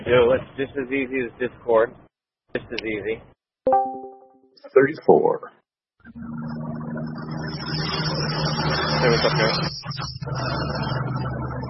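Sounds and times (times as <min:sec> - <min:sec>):
speech: 0:00.0 - 0:03.8, 0:04.6 - 0:06.6, 0:09.0 - 0:11.6
motorcycle engine droning: 0:06.1 - 0:11.6.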